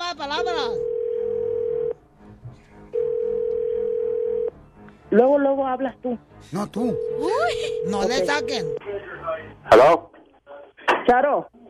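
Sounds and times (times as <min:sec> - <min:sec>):
telephone dial tone while a number is dialled: 0:00.8 - 0:02.0, 0:03.0 - 0:04.5
speech: 0:05.1 - 0:10.1, 0:11.1 - 0:11.6.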